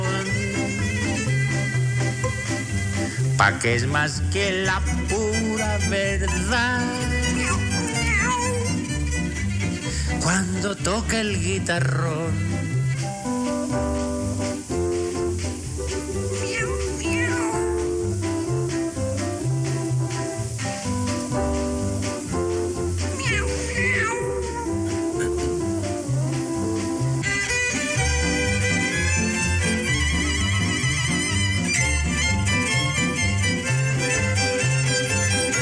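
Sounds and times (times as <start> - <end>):
busy continuous musical accompaniment: 0.0 - 35.5
speech: 3.4 - 7.2, 10.3 - 12.6
cat meowing: 7.4 - 8.8, 16.3 - 18.0, 23.1 - 25.3.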